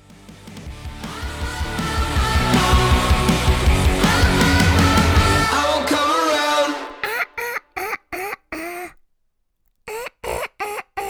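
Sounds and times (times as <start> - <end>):
loud song with singing: 1.0 - 8.9
choppy duck-like vocal bursts: 4.5 - 9.0, 9.9 - 11.0.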